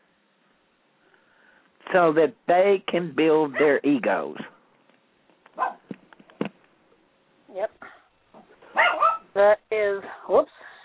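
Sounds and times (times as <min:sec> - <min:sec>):
speech: 0:01.9 - 0:04.5, 0:09.4 - 0:10.6
rat terrier barking: 0:05.6 - 0:05.9, 0:08.7 - 0:09.4.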